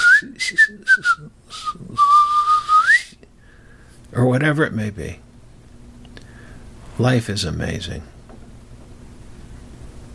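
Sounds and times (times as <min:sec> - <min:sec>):
breathy whistling through the teeth: 0:00.0 - 0:03.2
speech: 0:00.2 - 0:02.0, 0:04.2 - 0:05.2, 0:07.0 - 0:08.1.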